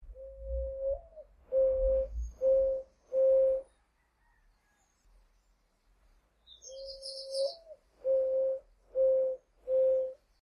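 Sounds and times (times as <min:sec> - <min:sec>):
Zenaida dove cooing: 0:00.1 - 0:03.8, 0:06.7 - 0:10.3.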